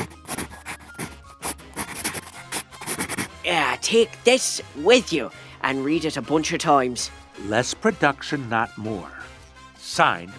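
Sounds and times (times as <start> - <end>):
pencil writing on paper: 0.0 - 3.3
speech: 3.5 - 9.2, 10.0 - 10.3.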